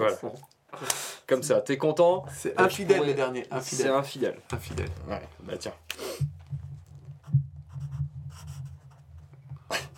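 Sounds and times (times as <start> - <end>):
speech: 0.0 - 6.4
felt-tip marker squeaking and scratching on paper: 7.2 - 9.1.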